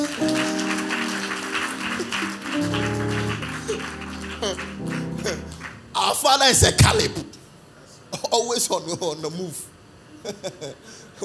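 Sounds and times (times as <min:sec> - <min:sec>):
audience applauding a preacher during a sermon: 0:00.0 - 0:07.2
laughter: 0:00.3 - 0:05.8, 0:10.2 - 0:11.2
speech: 0:04.4 - 0:05.4, 0:06.2 - 0:07.3, 0:08.4 - 0:11.2.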